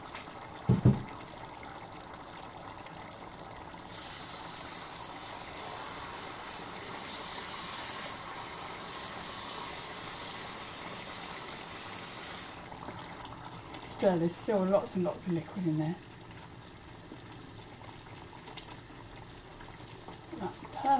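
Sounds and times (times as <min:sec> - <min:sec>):
water from a running tap pouring into a pot: 0:00.0 - 0:20.9
clunk: 0:00.7 - 0:01.1
speech: 0:14.0 - 0:16.1.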